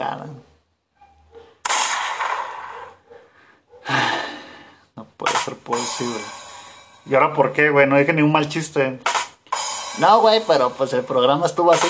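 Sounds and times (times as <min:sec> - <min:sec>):
gunshot sound effect in a comedy sketch: 0:01.7 - 0:02.6, 0:09.0 - 0:09.7
speech: 0:05.7 - 0:06.4, 0:07.0 - 0:09.1, 0:10.0 - 0:11.8.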